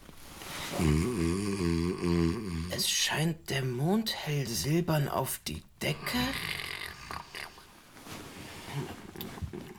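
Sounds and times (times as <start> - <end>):
person snoring while asleep: 0.7 - 2.8, 6.0 - 7.6
speech: 3.1 - 6.6.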